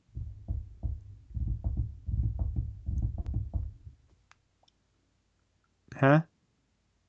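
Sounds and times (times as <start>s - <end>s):
rapid irregular knocking on a table: 0.0s - 4.0s
speech: 6.0s - 6.3s.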